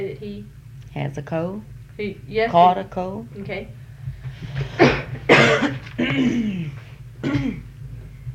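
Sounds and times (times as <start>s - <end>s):
speech: 0.0s - 3.8s, 4.4s - 7.6s
low steady hum: 0.0s - 8.3s
person coughing: 4.6s - 7.7s.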